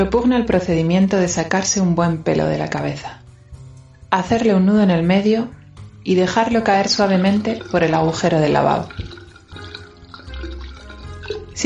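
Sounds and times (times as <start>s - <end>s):
speech: 0.0s - 3.2s, 4.1s - 9.1s
water running from a tap into a sink: 6.4s - 11.6s.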